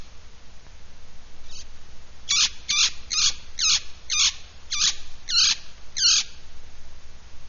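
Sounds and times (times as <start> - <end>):
Hispaniolan parrot screeching and squawking: 2.3 - 6.3.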